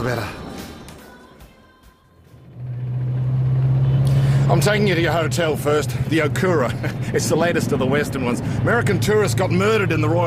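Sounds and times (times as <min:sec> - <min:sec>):
speech: 0:00.0 - 0:00.4, 0:04.5 - 0:10.2
car engine revving up and pulling away: 0:02.2 - 0:10.2.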